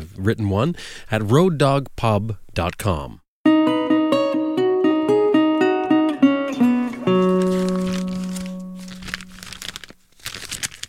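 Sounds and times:
speech: 0.2 - 3.2
stepped musical notes and a held tone: 3.5 - 9.7
pages of a paper catalog crinkling and rustling: 6.8 - 10.8.

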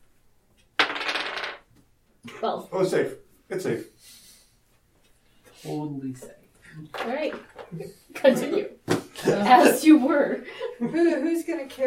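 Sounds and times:
dice rolling on a hard table: 0.8 - 1.8
speech: 2.2 - 4.2, 5.6 - 11.8.

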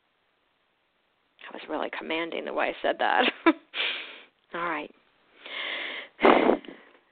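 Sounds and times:
speech: 1.5 - 3.6
person taking in breath: 5.4 - 7.0.

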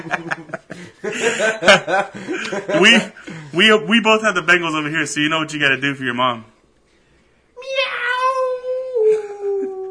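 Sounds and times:
laughter: 0.0 - 3.2
speech: 0.0 - 6.5
person imitating a lone wolf howl: 7.7 - 9.9.

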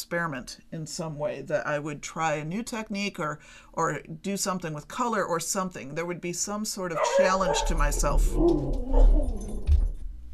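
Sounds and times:
speech: 0.0 - 9.8
dog whimpering and whining: 7.0 - 9.7.

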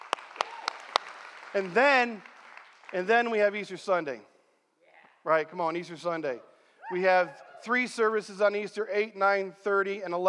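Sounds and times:
speaker's sharp hand claps during a church service: 0.0 - 3.2
speech: 1.5 - 2.3, 2.9 - 4.3, 5.2 - 10.2.

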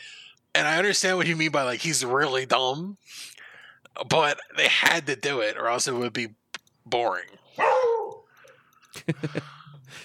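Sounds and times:
speech: 0.6 - 3.4, 4.0 - 7.9, 9.0 - 10.0
female pet dog barking: 7.6 - 8.3.

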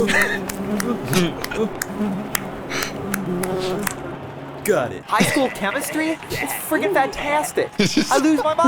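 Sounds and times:
laughter: 0.0 - 4.0, 4.9 - 8.6
voice imitating a buzzing bee: 0.0 - 4.0
speech: 4.7 - 8.6.

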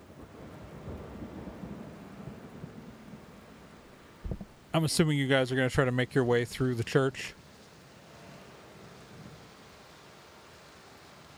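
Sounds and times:
low continuous rolling rumble of thunder: 0.0 - 4.8
steady rainfall: 0.0 - 11.3
laughter: 4.8 - 7.3
speech: 4.8 - 7.4.

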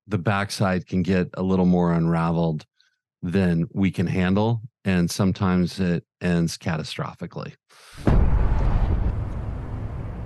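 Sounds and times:
speech: 0.1 - 8.3
cannon shot: 8.0 - 10.2
deep rumbling roar of a cannon shot: 8.1 - 10.2.

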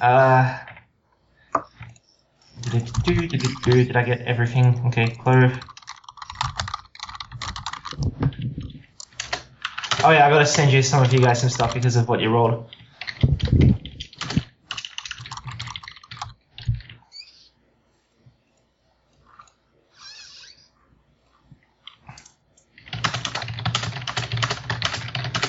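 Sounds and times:
speech: 0.0 - 0.6, 2.7 - 5.7, 10.0 - 12.8
clattery typing on a loud computer keyboard: 1.6 - 12.0, 12.7 - 17.0, 21.8 - 25.4.

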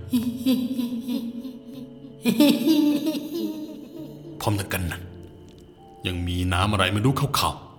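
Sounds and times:
eerie woman's laughter: 0.0 - 4.4
speech: 0.1 - 0.9, 2.2 - 3.5, 4.4 - 5.1, 6.0 - 7.6.

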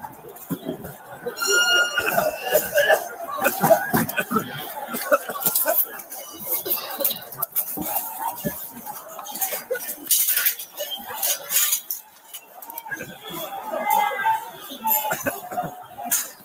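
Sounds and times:
noisy crowd commotion: 0.0 - 16.4
laughter: 1.2 - 11.4, 12.6 - 16.3
people coughing harshly from tear gas: 1.4 - 6.0, 14.8 - 16.3.

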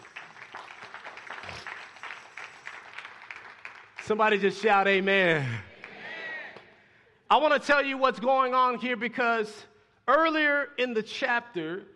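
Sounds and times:
audience clapping: 0.0 - 6.2
speech: 4.1 - 5.7, 7.3 - 11.9.

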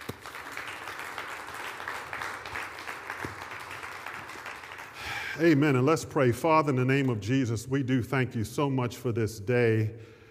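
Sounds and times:
crowd clapping at a religious sermon: 0.0 - 5.6
speech: 5.4 - 10.1.

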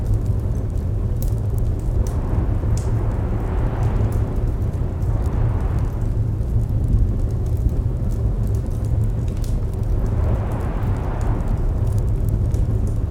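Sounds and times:
fire roaring with a deep constant rumble: 0.0 - 13.0
wind whooshing: 1.6 - 7.4, 9.6 - 13.0.

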